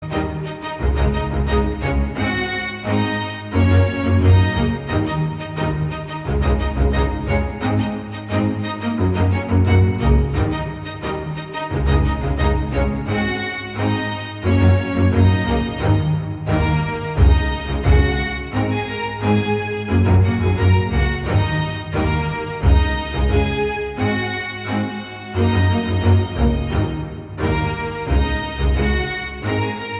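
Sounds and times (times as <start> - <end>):
string quintet playing: 0.0 - 29.9.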